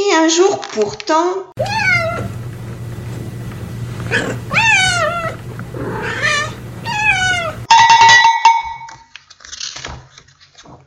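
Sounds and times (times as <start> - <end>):
speech: 0.3 - 1.9, 4.1 - 4.7
cat meowing melodically: 1.6 - 2.3, 4.5 - 5.4, 6.0 - 7.6.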